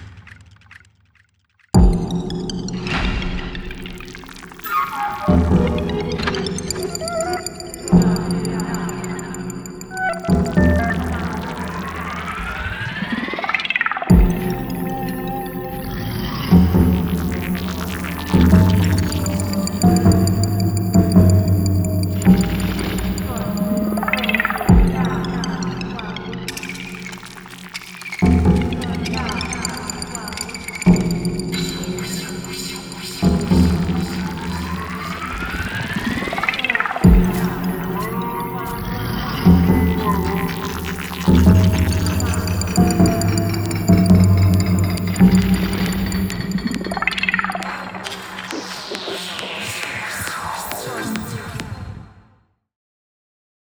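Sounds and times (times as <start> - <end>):
high ambient soundscape: 1.8 - 52.0.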